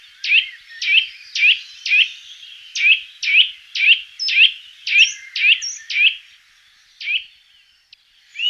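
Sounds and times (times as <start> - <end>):
Eurasian nuthatch calling loud clear whistled notes: 0.1 - 6.2.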